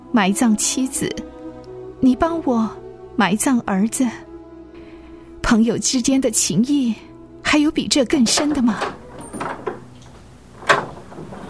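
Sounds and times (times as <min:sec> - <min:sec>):
speech: 0:00.2 - 0:01.4, 0:02.0 - 0:04.3, 0:05.5 - 0:09.0
door being opened clunking: 0:08.1 - 0:11.4.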